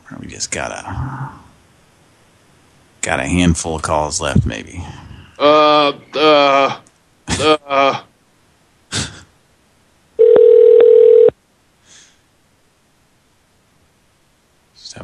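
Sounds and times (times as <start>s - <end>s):
speech: 0.3s - 1.4s, 3.0s - 6.8s, 7.4s - 8.0s
telephone dial tone: 10.2s - 11.3s.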